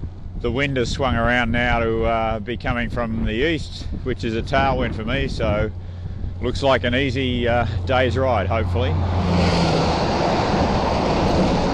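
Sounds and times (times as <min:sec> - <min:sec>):
speech: 0:00.4 - 0:09.7
road train truck passing on the highway: 0:05.4 - 0:11.7.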